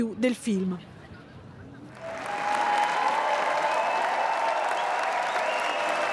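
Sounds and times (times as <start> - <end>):
large cinema audience applauding in a big hall: 1.9 - 6.1.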